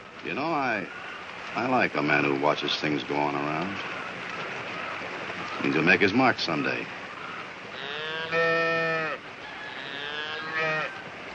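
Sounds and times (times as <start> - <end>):
speech: 0.2 - 4.0, 5.6 - 7.0, 8.3 - 8.5
Jersey cow mooing: 7.7 - 11.0.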